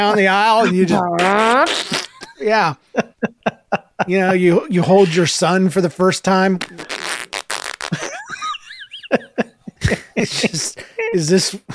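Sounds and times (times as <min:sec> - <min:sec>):
speech: 0:00.0 - 0:03.1, 0:04.0 - 0:07.0, 0:10.2 - 0:11.7
laughter: 0:00.0 - 0:05.2, 0:07.9 - 0:11.7
sputtering squeaky fart sounds: 0:01.0 - 0:02.3, 0:06.6 - 0:08.1.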